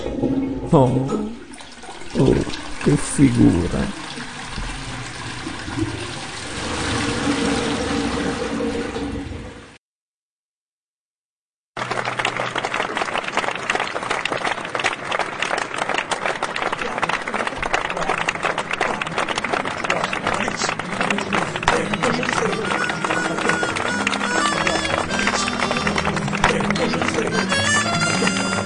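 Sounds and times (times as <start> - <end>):
toilet cistern refilling: 0.0 - 9.8, 16.3 - 28.6
toilet flushing: 0.0 - 9.8, 11.9 - 28.6
speech: 0.2 - 1.4, 2.1 - 4.0.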